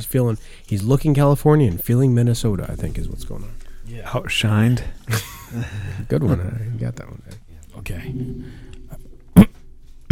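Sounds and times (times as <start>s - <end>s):
speech: 0.0s - 8.7s
person coughing: 9.4s - 10.0s.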